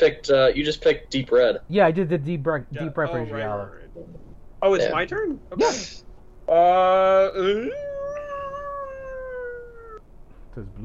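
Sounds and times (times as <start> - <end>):
speech: 0.0 - 8.0, 10.6 - 10.8
person imitating a werewolf howl: 6.5 - 10.0.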